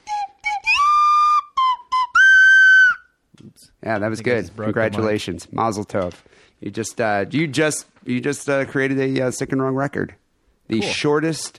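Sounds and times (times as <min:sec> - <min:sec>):
slide whistle playing a triumphant tune: 0:00.0 - 0:03.2
speech: 0:03.8 - 0:11.5.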